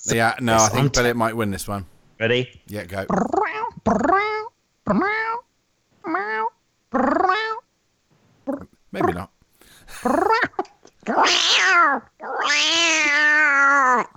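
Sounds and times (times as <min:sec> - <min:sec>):
speech: 0:00.0 - 0:05.4, 0:06.0 - 0:07.6, 0:08.5 - 0:09.3, 0:10.0 - 0:14.1
person imitating a cat meowing: 0:03.1 - 0:07.7, 0:10.1 - 0:14.1.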